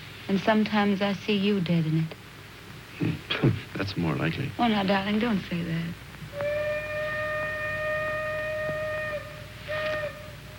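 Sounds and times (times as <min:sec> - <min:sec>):
faint rumbling background: 0:00.0 - 0:06.4
speech: 0:00.3 - 0:02.2, 0:03.0 - 0:06.6
steam train whistle blasts: 0:06.3 - 0:10.5.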